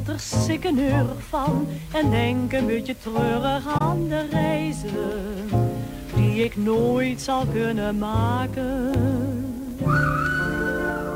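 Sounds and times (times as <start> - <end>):
speech: 0.1 - 9.3
train whistle: 9.9 - 11.1.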